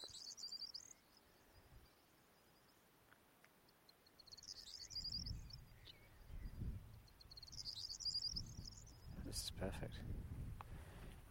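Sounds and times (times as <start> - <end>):
corn bunting singing jangling trills: 0.0 - 2.8, 3.6 - 9.4
low wind rumble on a wet late evening: 5.1 - 7.6, 8.2 - 11.2
speech: 9.6 - 10.4.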